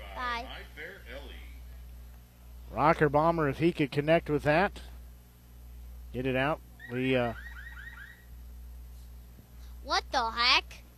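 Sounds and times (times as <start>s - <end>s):
steady low hum: 0.0s - 10.9s
speech: 2.7s - 4.9s, 6.1s - 7.4s, 9.9s - 10.6s
car alarm wailing: 6.8s - 8.3s.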